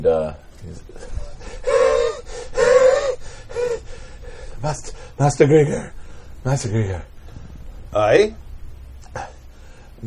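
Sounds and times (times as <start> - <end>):
speech: 0.0 - 1.1, 4.6 - 7.1, 7.9 - 8.4
voice imitating huffing, puffing and wheezing: 1.0 - 4.6.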